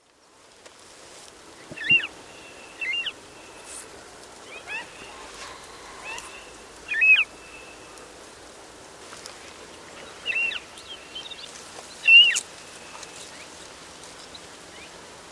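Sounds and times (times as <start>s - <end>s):
steady hiss of background noise: 0.0s - 15.3s
Western marsh harrier giving thin arching whistled calls: 1.8s - 2.1s, 2.7s - 3.8s, 4.6s - 7.8s, 12.0s - 12.4s.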